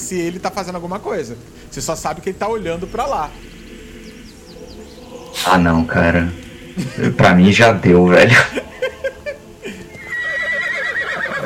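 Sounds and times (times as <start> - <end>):
speech: 0.1 - 3.6, 5.4 - 8.6
laughter: 6.5 - 10.4
horse in a video game whinnying in distress as it sinks: 10.0 - 11.4.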